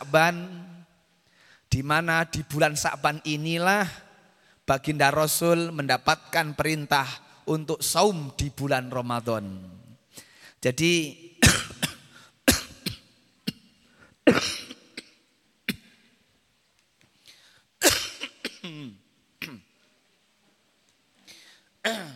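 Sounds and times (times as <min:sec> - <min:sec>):
speech: 0:00.1 - 0:00.6, 0:01.7 - 0:04.0, 0:04.7 - 0:09.8, 0:10.6 - 0:11.2
person coughing: 0:11.4 - 0:16.1, 0:17.8 - 0:19.8, 0:21.3 - 0:22.1.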